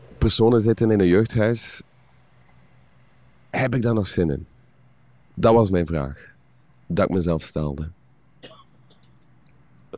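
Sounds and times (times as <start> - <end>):
speech: 0.2 - 1.9, 3.6 - 4.5, 5.4 - 6.3, 6.9 - 8.0
audience member coughing: 8.4 - 9.1.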